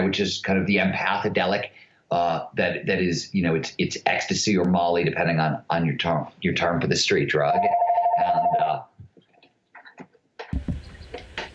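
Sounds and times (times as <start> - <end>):
speech: 0.1 - 8.9
mobile phone ringtone from an incoming call: 7.6 - 8.6.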